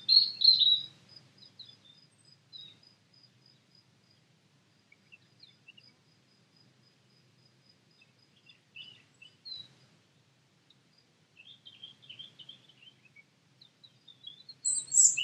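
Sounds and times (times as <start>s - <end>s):
European robin singing Erithacus rubecula: 0.0s - 2.8s, 8.0s - 9.7s, 11.4s - 15.2s.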